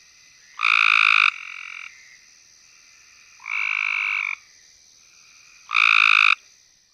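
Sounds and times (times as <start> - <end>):
Cope's gray treefrog Hyla chrysoscelis trilling: 0.4 - 2.2, 3.3 - 4.5, 5.5 - 6.4.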